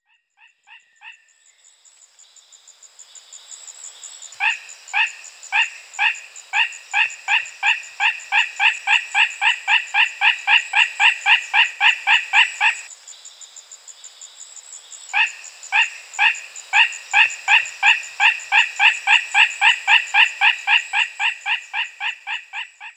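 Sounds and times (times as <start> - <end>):
Otophryne pyburni frog calling: 4.4 - 12.9, 15.1 - 22.9.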